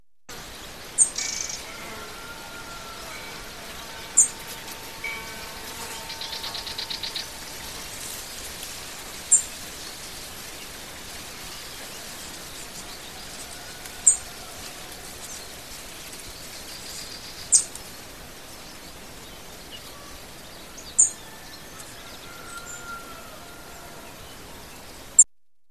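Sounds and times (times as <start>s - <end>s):
birds: 0.3s - 25.2s
wind: 0.3s - 25.3s
flies buzzing: 1.3s - 9.8s
bell: 1.7s - 8.3s.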